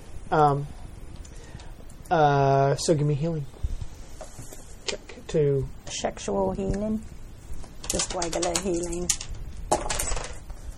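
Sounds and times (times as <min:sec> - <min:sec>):
speech: 0:00.3 - 0:00.8, 0:02.1 - 0:03.6, 0:04.9 - 0:07.2, 0:07.9 - 0:09.2
dice rolling on a hard table: 0:07.9 - 0:10.4.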